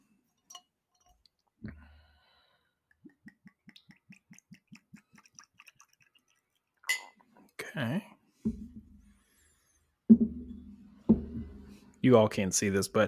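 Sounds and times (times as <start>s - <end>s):
glassware clinking: 0.5s - 1.1s, 6.8s - 7.2s
liquid poured from a measuring cup into a glass: 2.9s - 7.2s
speech: 7.8s - 8.1s, 12.0s - 13.0s.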